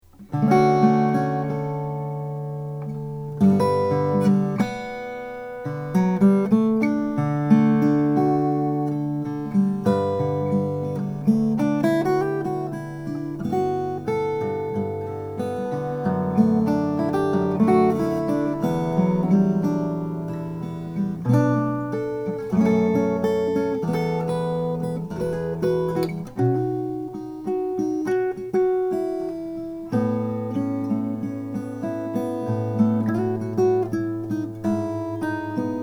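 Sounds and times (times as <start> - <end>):
Applegate FS 12 Brazilian rosewood guitar playing: 0.0 - 35.8.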